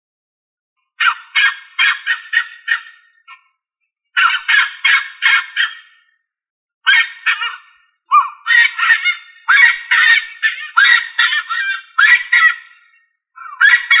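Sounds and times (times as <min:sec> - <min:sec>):
rail giving harsh raspy rattling calls: 0:01.0 - 0:03.4, 0:04.2 - 0:06.1, 0:06.9 - 0:13.9.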